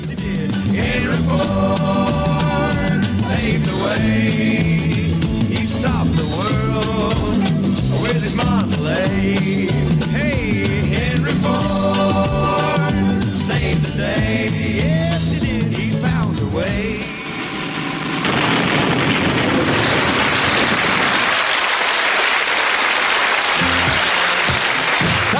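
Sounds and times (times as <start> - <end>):
upbeat pop song with sung vocals played from a record: 0.0 - 17.2, 23.6 - 25.3
crowd applauding: 18.2 - 25.3.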